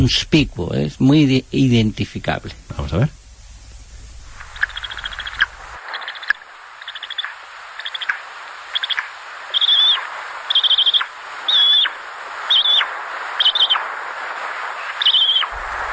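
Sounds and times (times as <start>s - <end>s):
speech: 0.0s - 3.2s
faint hissing background: 0.0s - 15.9s
bird chicks calling from the nest: 4.4s - 13.9s, 14.9s - 15.9s.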